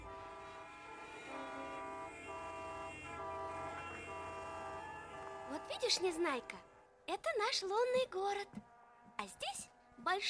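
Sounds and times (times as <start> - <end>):
car horns honking in a traffic jam: 0.0 - 7.0
continuous traffic jam din: 0.0 - 10.2
speech: 5.6 - 8.6, 9.2 - 10.2.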